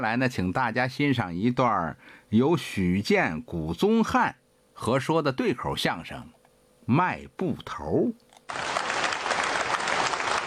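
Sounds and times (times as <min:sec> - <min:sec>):
speech: 0:00.0 - 0:08.8
audience applause at a crosstalk comedy show: 0:08.5 - 0:10.4.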